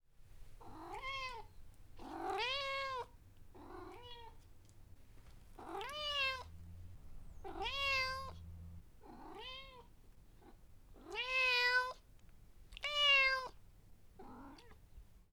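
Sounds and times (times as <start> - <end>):
cat meowing: 0.7 - 4.4, 5.6 - 6.5, 7.3 - 9.9, 11.0 - 12.0, 12.8 - 13.6.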